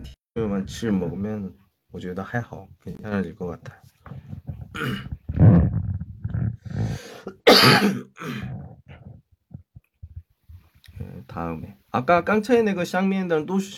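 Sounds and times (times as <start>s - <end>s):
speech: 0.4s - 5.2s, 7.6s - 8.6s, 11.4s - 13.7s
rough breathing: 4.0s - 7.4s, 8.2s - 9.2s
throat clearing: 4.4s - 6.6s, 7.2s - 9.2s
harsh coughing: 4.7s - 5.2s, 7.1s - 8.8s.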